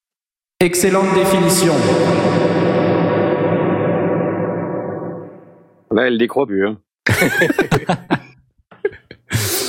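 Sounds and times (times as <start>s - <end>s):
speech: 0.6s - 2.6s, 6.0s - 8.3s
dense washy tail: 0.6s - 6.0s
laughter: 7.1s - 9.3s.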